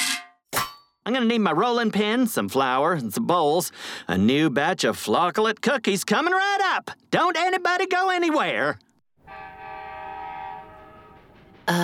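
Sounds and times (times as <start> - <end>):
speech: 1.1 - 8.9, 11.7 - 11.8
approaching train horn blaring: 9.2 - 11.6.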